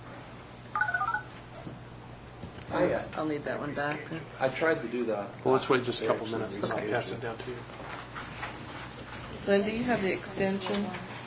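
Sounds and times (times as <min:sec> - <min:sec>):
big-button desk phone keypad tones dialing a number: 0:00.8 - 0:01.3
speech: 0:02.8 - 0:07.8, 0:09.5 - 0:11.1.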